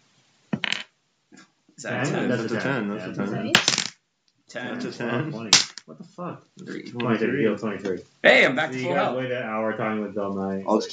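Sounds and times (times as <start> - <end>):
dice clattering onto a table: 0.6 - 0.9, 3.5 - 4.0, 5.5 - 5.9
laughter: 1.8 - 3.5, 4.6 - 5.5
speech: 1.8 - 3.9, 4.5 - 10.9.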